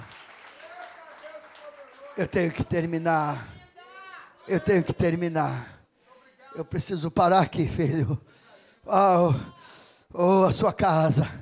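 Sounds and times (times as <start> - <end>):
audience applause: 0.0 - 3.0
speech: 2.2 - 3.6, 4.5 - 5.8, 6.6 - 11.3.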